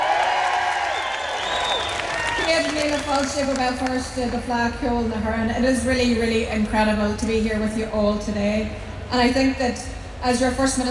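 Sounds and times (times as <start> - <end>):
whoops and shouted voices: 0.0 - 3.4
large outdoor crowd cheering at an afternoon opening ceremony at City Hall in Belfast: 0.0 - 4.0
speech: 2.7 - 10.8.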